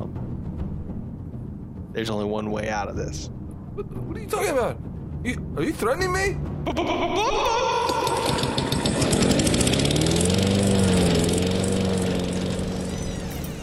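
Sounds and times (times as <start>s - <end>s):
speech: 2.0s - 8.7s
generator engine running in the middle of a kitchen: 7.7s - 13.6s.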